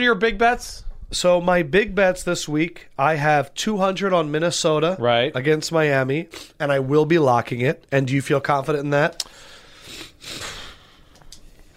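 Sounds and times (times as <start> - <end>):
speech: 0.0 - 10.6
sniffling into the microphone: 9.3 - 11.7.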